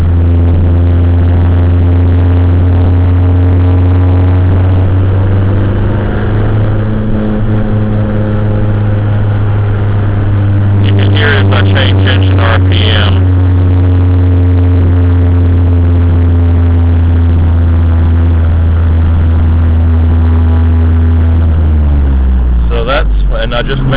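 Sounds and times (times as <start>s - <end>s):
car engine droning with heavy vibration through a bad motor mount: 0.0s - 23.9s.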